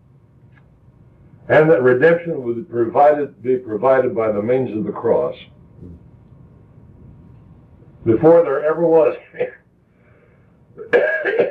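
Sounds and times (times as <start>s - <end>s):
speech: 1.5s - 6.0s, 8.0s - 9.6s, 10.8s - 11.4s
sharp cough: 9.3s - 9.6s, 10.8s - 11.4s.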